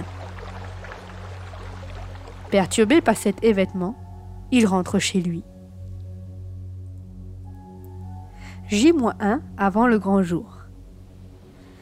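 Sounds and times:
distant river flowing: 0.0 - 4.5
speech: 2.5 - 5.5, 8.7 - 10.6.

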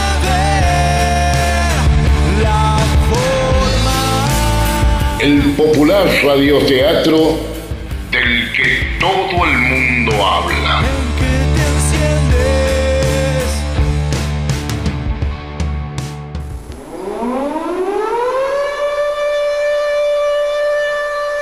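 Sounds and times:
dense music-like sounds: 0.0 - 21.4
speech: 5.2 - 7.5, 8.2 - 11.0
siren wailing: 16.6 - 21.4.

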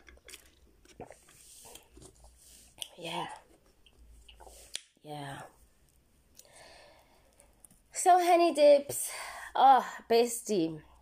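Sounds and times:
person sipping a Pepsi: 0.0 - 3.0, 3.9 - 4.9
speech: 3.0 - 3.4, 5.0 - 5.6, 8.0 - 10.9.

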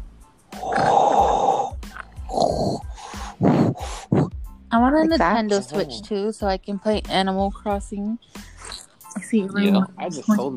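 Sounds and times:
loud raspy heavy breathing with snorting roughness: 0.6 - 4.5, 8.2 - 9.1
speech: 5.0 - 8.5, 9.2 - 10.5.

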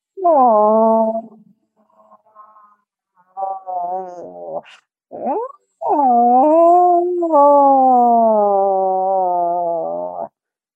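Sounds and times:
speech: 0.2 - 1.3, 3.9 - 6.4
person imitating a cat in heat yowling: 0.2 - 1.4, 3.4 - 10.3.

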